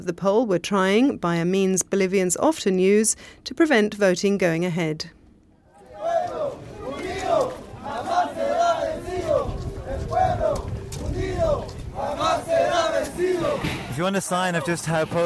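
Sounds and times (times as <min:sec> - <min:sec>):
speech: 0:00.0 - 0:05.2, 0:14.0 - 0:15.2
crowd of hundreds of indigenous people roaring and shouting while rioting at a polling station: 0:05.7 - 0:15.2.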